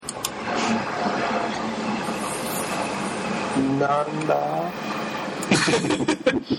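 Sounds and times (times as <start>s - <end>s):
whining tone: 0.0s - 6.0s
train rumbling past: 0.3s - 6.3s
speech: 3.6s - 5.0s, 5.6s - 6.5s
people chuckling: 5.4s - 6.5s.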